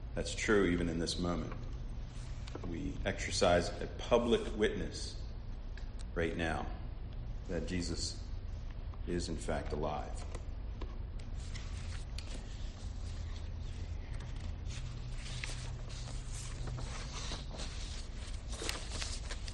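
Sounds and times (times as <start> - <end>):
low hum: 0.0 - 19.5
speech: 0.2 - 1.7, 2.6 - 5.2, 6.2 - 6.8, 7.5 - 8.2, 9.0 - 10.4
sheets of paper being shuffled and straightened: 11.2 - 19.5.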